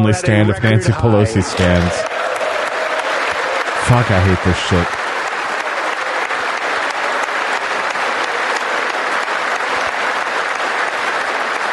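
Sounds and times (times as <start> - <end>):
speech: 0.0 - 2.4, 3.9 - 5.0
large audience applauding during a political speech: 1.0 - 11.7.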